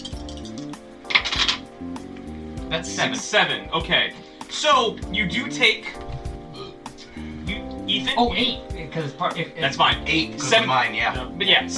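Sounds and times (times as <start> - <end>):
two dice clattering across a hard surface: 0.0 - 1.6
speech: 2.7 - 6.0, 8.0 - 11.7.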